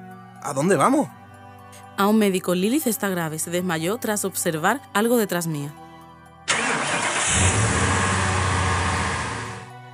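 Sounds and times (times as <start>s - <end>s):
speech: 0.4s - 5.8s
car engine starting and rumbling idle: 6.5s - 9.7s.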